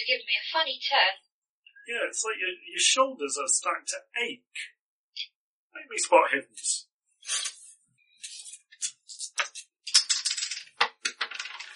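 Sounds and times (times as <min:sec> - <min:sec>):
speech: 0:00.1 - 0:01.3, 0:01.9 - 0:07.6
dice tumbling and clattering across a hard floor: 0:09.4 - 0:11.7.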